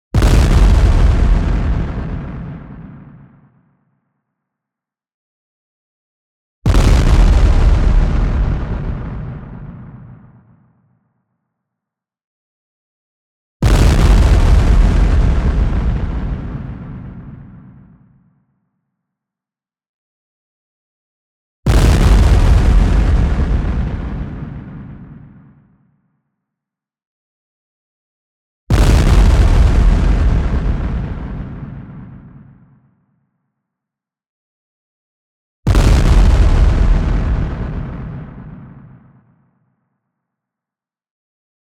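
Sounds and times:
long gnarly white noise sine explosion: 0:00.2 - 0:03.5, 0:06.7 - 0:10.6, 0:13.6 - 0:18.1, 0:21.7 - 0:25.6, 0:28.7 - 0:32.7, 0:35.7 - 0:39.3.

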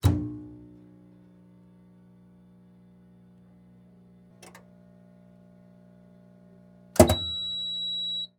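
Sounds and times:
medical X-ray machine turning on: 0:07.0 - 0:07.7.

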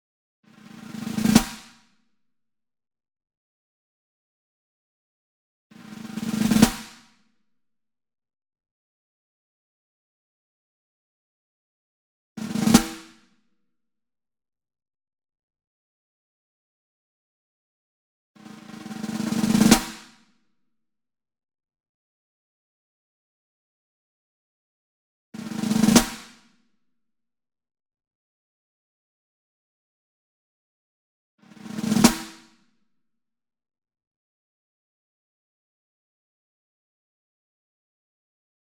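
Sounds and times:
single snare drum block roll: 0:00.8 - 0:01.8, 0:05.9 - 0:07.0, 0:12.4 - 0:13.1, 0:18.4 - 0:20.2, 0:25.5 - 0:26.4, 0:31.6 - 0:32.5.

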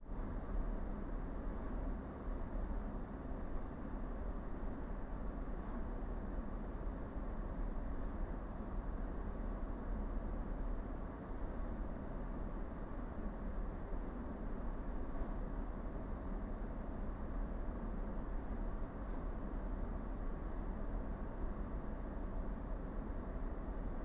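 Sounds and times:
air conditioner: 0:00.0 - 0:24.0.

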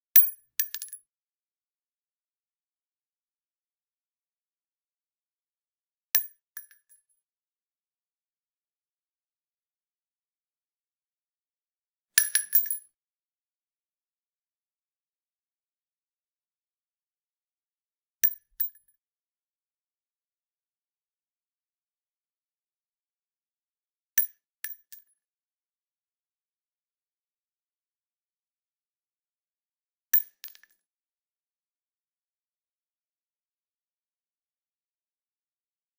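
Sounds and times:
.223 shell casing dropping on concrete: 0:00.2 - 0:01.0, 0:06.2 - 0:06.8, 0:12.2 - 0:12.9, 0:18.2 - 0:18.8, 0:30.2 - 0:30.8.

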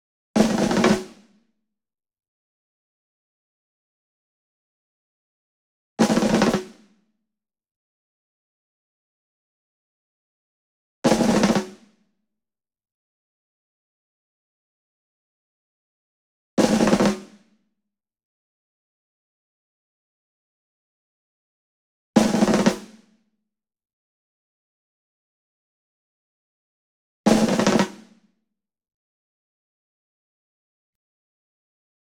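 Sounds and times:
ensemble snare drum group roll: 0:00.4 - 0:01.3, 0:06.0 - 0:06.8, 0:11.1 - 0:11.9, 0:16.6 - 0:17.4, 0:22.2 - 0:23.0, 0:27.3 - 0:28.2.

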